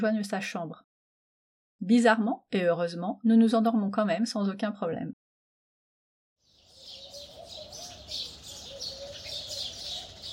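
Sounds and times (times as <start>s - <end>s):
speech: 0.0s - 0.9s, 1.8s - 5.2s
several birds singing and chirping at dawn: 6.4s - 10.3s.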